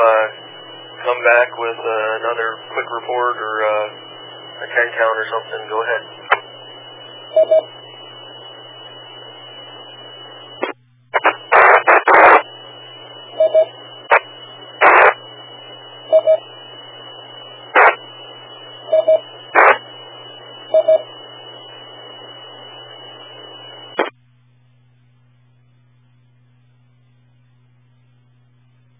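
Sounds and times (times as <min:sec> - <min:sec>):
radio channel static: 0:00.0 - 0:24.2
speech: 0:01.2 - 0:06.2, 0:07.4 - 0:07.8.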